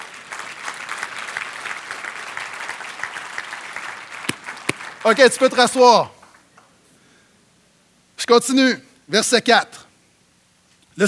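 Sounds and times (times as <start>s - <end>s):
sharper louder claps: 0.0s - 5.6s
congregation applauding: 0.0s - 6.4s
speech: 5.0s - 6.2s, 8.3s - 9.8s.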